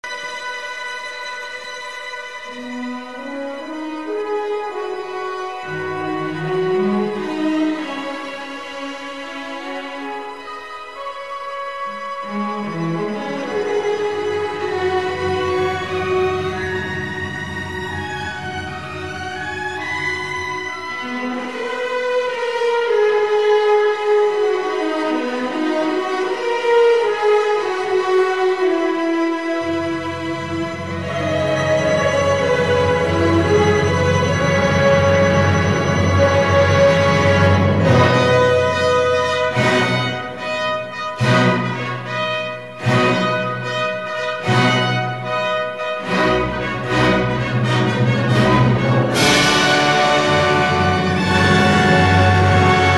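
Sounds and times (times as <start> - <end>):
viola fantasia: 0.0 - 52.9.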